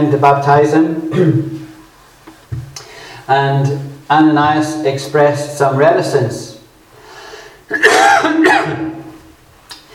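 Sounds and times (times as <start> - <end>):
speech: 0.0 - 1.6, 3.3 - 6.5, 7.7 - 8.9
person coughing harshly: 1.1 - 1.4, 7.7 - 8.9.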